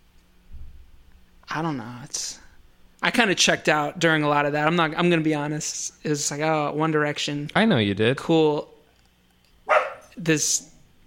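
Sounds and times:
speech: 1.5s - 2.4s, 3.0s - 8.7s, 10.2s - 10.7s
dog barking: 9.7s - 10.2s.

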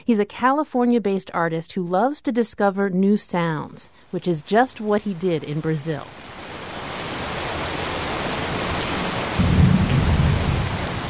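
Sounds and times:
speech: 0.0s - 6.4s
torrential summer evening rain downpour in Belo Horizonte Brazil: 4.4s - 11.0s
deep loud thunder rumbling: 7.2s - 11.0s.

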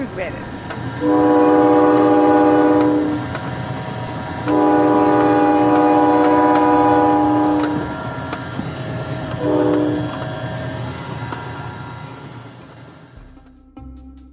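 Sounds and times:
steady train rumble: 0.0s - 13.8s
speech: 0.1s - 1.7s
train horn blasts: 1.0s - 3.4s, 4.3s - 8.2s, 9.3s - 10.2s.

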